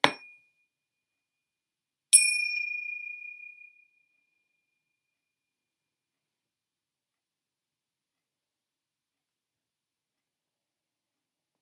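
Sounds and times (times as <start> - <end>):
meditation bell ringing: 2.2 - 3.9.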